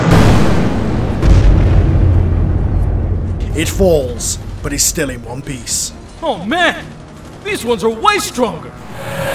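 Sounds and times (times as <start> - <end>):
missiles firing and exploding as a giant robot blasts an armored suit: 0.1 - 3.0
speech: 3.6 - 9.3.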